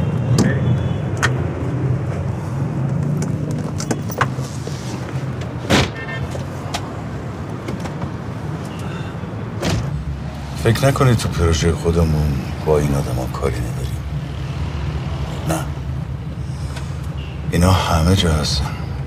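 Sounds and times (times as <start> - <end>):
road noise: 0.0 - 19.0
car engine low rumble while driving: 0.1 - 17.2
sharp clicks and thumps from inside the vehicle: 2.8 - 6.9, 7.6 - 8.2
speech: 10.7 - 13.9, 17.5 - 18.8.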